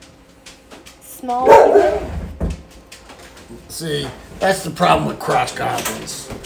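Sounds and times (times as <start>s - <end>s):
speech: 1.2s - 2.1s, 3.5s - 6.4s
dog barking: 1.3s - 2.2s.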